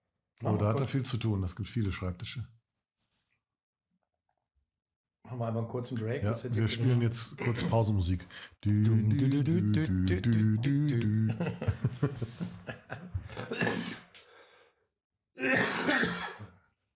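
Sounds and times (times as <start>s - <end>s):
speech: 0.4s - 2.6s, 5.3s - 14.0s
laughter: 10.6s - 13.6s
rough coughing: 13.2s - 14.2s, 15.4s - 16.6s
throat clearing: 13.3s - 14.2s, 15.4s - 16.6s.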